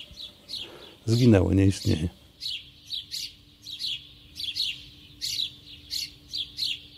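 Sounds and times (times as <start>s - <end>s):
flock of sparrows chirping on a street: 0.0s - 6.9s
low steady hum: 0.0s - 6.9s
speech: 1.0s - 2.2s.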